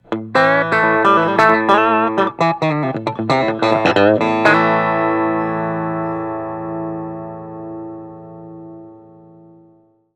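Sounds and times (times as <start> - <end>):
clean electric guitar on bridge pickup: 0.0 - 10.0.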